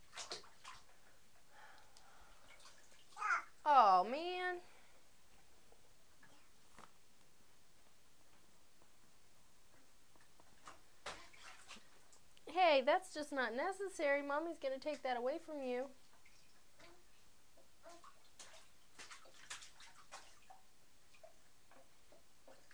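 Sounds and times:
water sloshing and splashing in a bathtub: 0.0s - 7.4s, 9.6s - 22.7s
young child brief speech: 3.2s - 3.5s
young child high vocalizing: 3.2s - 3.6s
speech: 12.8s - 16.0s.

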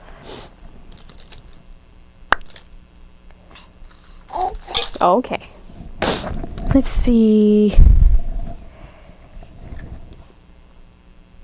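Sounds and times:
keys being handled and jingling: 0.9s - 1.7s, 3.6s - 5.0s
speech: 5.0s - 5.6s, 6.3s - 7.9s.

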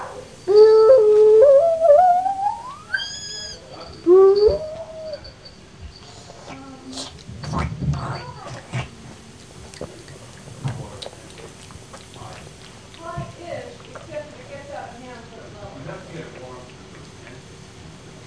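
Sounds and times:
dog howling: 0.0s - 5.4s.

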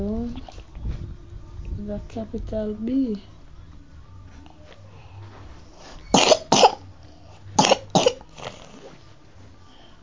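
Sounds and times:
speech: 1.9s - 3.4s
child coughing: 6.1s - 6.8s, 7.6s - 8.2s.

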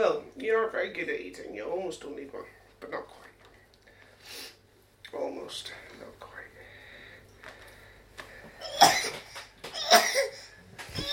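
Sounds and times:
speech: 0.0s - 3.3s, 5.1s - 6.5s
baby coughing: 8.6s - 11.1s.

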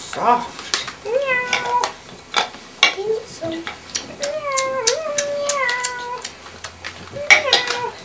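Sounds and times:
speech: 0.2s - 1.6s
cat meowing: 1.0s - 2.0s, 4.2s - 6.3s, 7.1s - 8.0s.

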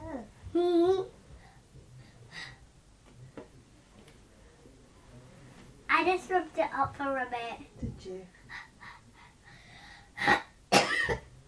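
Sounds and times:
speech: 6.0s - 8.6s
throaty broadband coughs: 10.2s - 11.3s.

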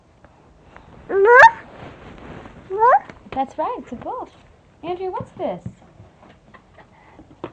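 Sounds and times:
duck honking: 1.1s - 1.6s
speech: 3.4s - 5.8s.

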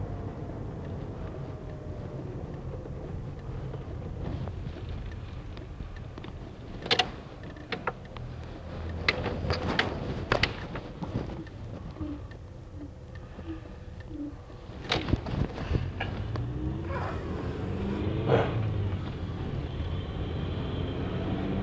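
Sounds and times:
car engine humming while turning around on the road: 0.0s - 21.6s
clicks and thumps: 2.5s - 16.6s.

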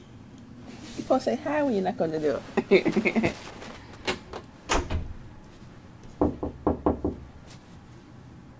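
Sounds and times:
speech: 1.1s - 3.5s
knocking on a door: 6.1s - 7.3s.

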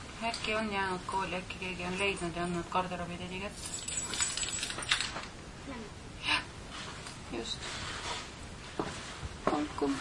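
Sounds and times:
faint hiss: 0.0s - 9.9s
speech: 0.2s - 4.2s, 7.3s - 7.9s, 9.6s - 9.9s
bunch of keys jangling: 3.6s - 5.3s.

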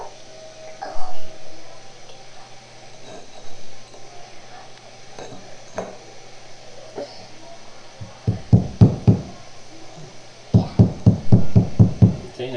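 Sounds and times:
hammer tapping: 8.0s - 9.4s, 10.5s - 12.3s.

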